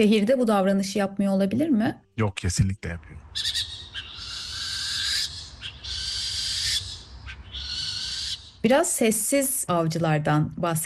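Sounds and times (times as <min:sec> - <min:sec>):
speech: 0:00.0 - 0:03.8, 0:08.6 - 0:10.8
barn owl harsh hissing screech: 0:03.3 - 0:08.7.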